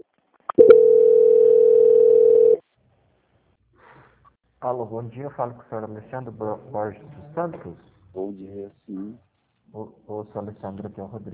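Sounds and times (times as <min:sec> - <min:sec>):
loud flat telephone line tone during a call transfer: 0:00.5 - 0:02.6
speech: 0:04.6 - 0:11.3.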